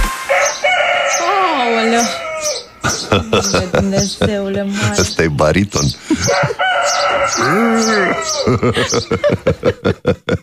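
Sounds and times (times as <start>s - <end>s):
rooster clucking: 0.0s - 10.1s
rooster crowing: 0.2s - 2.9s, 6.1s - 9.4s
laughter: 2.8s - 6.8s, 7.4s - 10.4s
speech: 3.1s - 10.4s.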